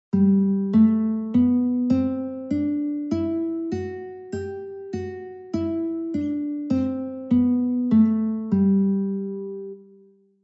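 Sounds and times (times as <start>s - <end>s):
guitar playing a G scale: 0.1s - 10.3s.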